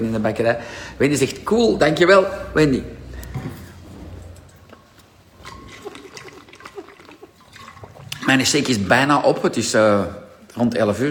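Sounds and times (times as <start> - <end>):
speech: 0.0 - 3.6, 8.3 - 11.0
soft slurping and gulping of a sip of water: 4.4 - 8.9.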